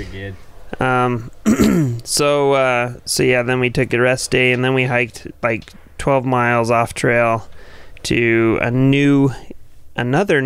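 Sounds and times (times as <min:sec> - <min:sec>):
speech: 0:00.0 - 0:10.4
rough raspy throat clearing: 0:01.4 - 0:02.0.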